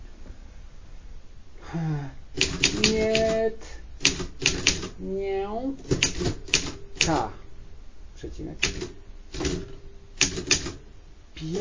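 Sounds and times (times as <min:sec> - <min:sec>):
new typewriter keys clacking: 0:02.4 - 0:03.4, 0:04.0 - 0:05.0, 0:05.9 - 0:07.3, 0:08.6 - 0:10.8, 0:11.4 - 0:11.6
speech: 0:08.4 - 0:09.6, 0:11.4 - 0:11.6.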